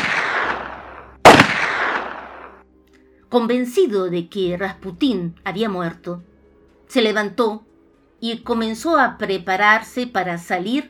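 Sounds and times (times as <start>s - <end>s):
pistol shot fired at point-blank range: 0.0s - 2.6s
speech: 3.3s - 6.3s, 6.9s - 10.8s.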